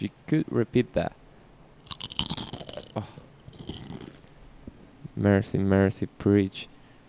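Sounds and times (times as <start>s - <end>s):
speech: 0.0s - 1.2s, 3.0s - 3.2s, 5.2s - 6.7s
crunchy chewing of crisp food: 1.8s - 4.3s.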